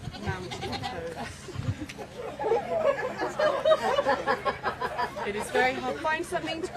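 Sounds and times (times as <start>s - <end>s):
goats bleating during a goat yoga class: 0.0s - 1.2s
faint murmur: 0.0s - 6.7s
laughter: 1.1s - 6.7s
speech: 5.7s - 6.7s.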